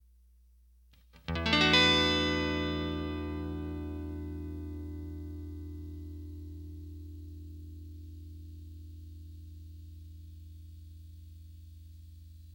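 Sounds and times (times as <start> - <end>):
clean E9 guitar chord: 1.3 - 9.5.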